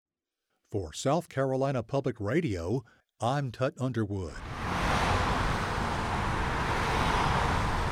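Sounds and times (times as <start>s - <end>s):
speech: 0.7s - 4.5s
road traffic noise of passing cars: 4.4s - 7.9s.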